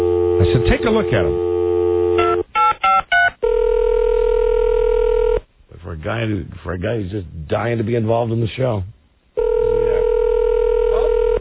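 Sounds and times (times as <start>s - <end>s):
steady telephone tone while a cell phone number is dialed: 0.0s - 5.4s, 9.4s - 11.4s
speech: 0.5s - 1.5s, 6.0s - 9.0s.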